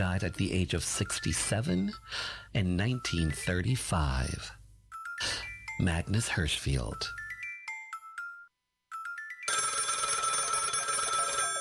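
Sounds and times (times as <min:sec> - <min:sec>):
speech: 0:00.0 - 0:04.6, 0:05.2 - 0:07.2
telephone ringing with electronic tone bursts and trilling ring: 0:07.2 - 0:11.5.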